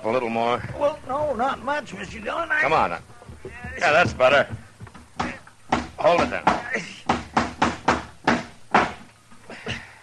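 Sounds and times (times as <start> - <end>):
speech: 0.0 - 4.6, 6.0 - 6.9
hammer pounding nails into a rotten dry wooden door: 5.2 - 9.1.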